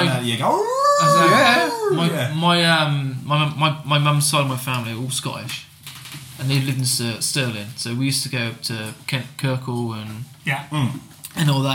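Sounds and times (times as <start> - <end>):
speech: 0.2 - 11.7
voice imitating wind howling between two mountains: 0.4 - 2.2.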